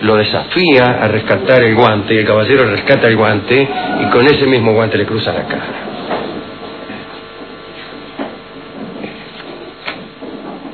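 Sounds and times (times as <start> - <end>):
speech: 0.0 - 6.0
chairs and tables dragged across floor upstairs: 5.4 - 10.7.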